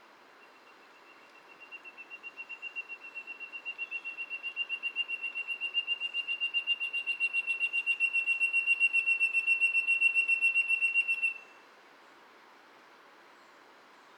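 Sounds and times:
background hiss: 0:00.0 - 0:14.1
Spotted jewel-babbler Ptilorrhoa leucosticta giving thin high pulsing whistle: 0:01.5 - 0:11.5.

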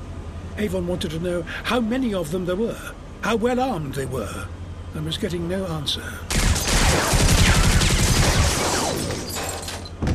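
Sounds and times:
speech: 0:00.6 - 0:07.3
rapid gunfire tearing through a deck: 0:06.3 - 0:09.3.

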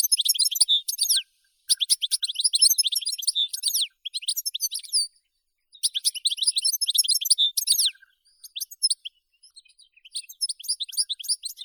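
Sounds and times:
European goldfinch singing: 0:00.0 - 0:11.6.

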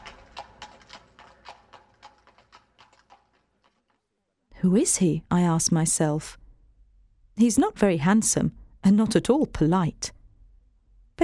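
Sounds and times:
horse hooves clip-clopping in a trotting rhythm: 0:00.0 - 0:04.1
speech: 0:04.6 - 0:06.4, 0:07.4 - 0:10.2.

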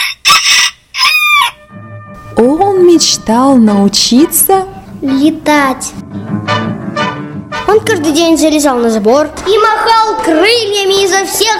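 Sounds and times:
rooster crowing: 0:00.0 - 0:01.8
speech: 0:03.0 - 0:06.8, 0:07.7 - 0:11.5.

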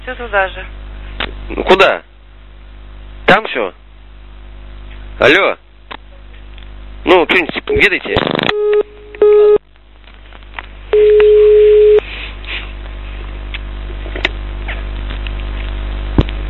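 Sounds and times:
speech: 0:00.0 - 0:00.8, 0:01.5 - 0:02.1, 0:03.3 - 0:03.8, 0:05.2 - 0:05.6, 0:07.0 - 0:09.6
low telephone line hum: 0:00.0 - 0:16.4
telephone busy tone after a disconnected call: 0:08.5 - 0:09.6, 0:11.0 - 0:12.0.

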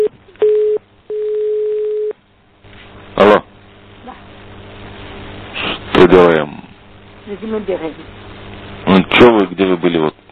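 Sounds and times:
telephone dial tone from a phone in a transformer booth: 0:00.0 - 0:02.1
speech: 0:06.1 - 0:06.5, 0:07.3 - 0:08.2, 0:09.2 - 0:10.2.

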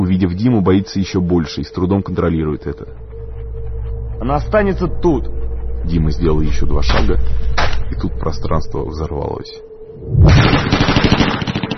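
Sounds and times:
low droning tone: 0:00.0 - 0:11.7
speech: 0:00.2 - 0:03.1, 0:04.2 - 0:10.8
deafening burst of automatic gunfire: 0:10.3 - 0:11.7.

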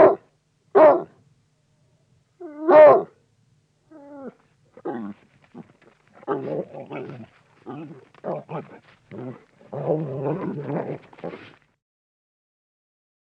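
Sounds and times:
bloodhound barking: 0:00.0 - 0:01.1, 0:02.7 - 0:03.2
bloodhound whining: 0:03.9 - 0:11.6.

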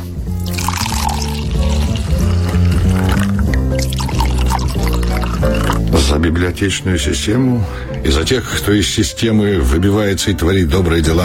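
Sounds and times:
wine pouring into a glass: 0:00.3 - 0:06.0
speech: 0:06.2 - 0:11.2.

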